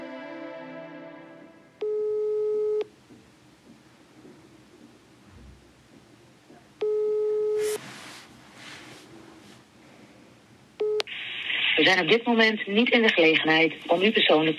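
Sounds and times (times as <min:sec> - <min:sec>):
phone ringback tone from a call to a care farm: 0:01.8 - 0:02.9, 0:06.8 - 0:07.7
speech: 0:11.8 - 0:14.5.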